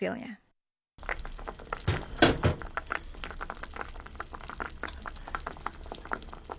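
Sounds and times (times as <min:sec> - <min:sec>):
speech: 0:00.0 - 0:00.4
chicken broth simmering in a pot: 0:01.0 - 0:06.5.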